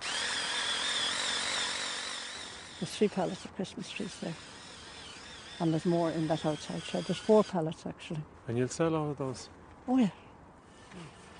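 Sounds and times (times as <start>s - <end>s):
power drill boring into a Christmas tree trunk for a stand: 0.0s - 7.6s
speech: 2.8s - 4.5s, 5.6s - 10.2s, 10.9s - 11.2s.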